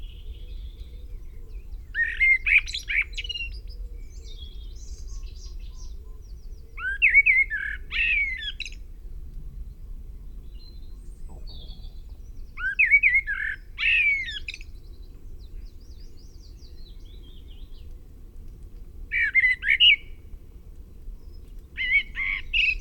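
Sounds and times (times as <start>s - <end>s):
Common blackbird Turdus merula singing: 0.0s - 8.8s, 9.6s - 17.9s, 19.1s - 20.2s
faint thin bird notes: 0.0s - 18.0s.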